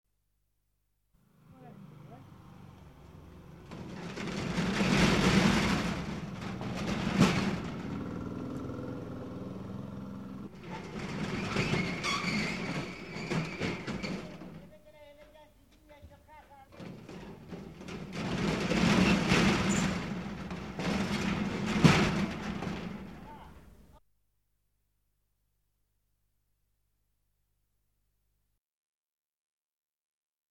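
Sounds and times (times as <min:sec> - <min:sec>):
roller shutter: 0:03.0 - 0:08.9, 0:10.4 - 0:14.8, 0:16.7 - 0:23.3.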